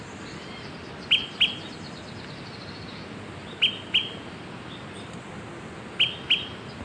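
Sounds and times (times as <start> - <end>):
steady quiet hiss: 0.0 - 6.8
Smoke-colored pewee Contopus fumigatus zarumae giving sharp high pip notes: 0.4 - 1.8, 3.5 - 4.2, 6.0 - 6.8.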